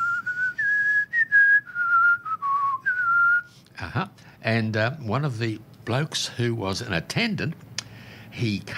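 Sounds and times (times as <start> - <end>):
person whistling a short melodic tune: 0.0 - 3.6
speech: 3.9 - 7.7, 8.3 - 8.7.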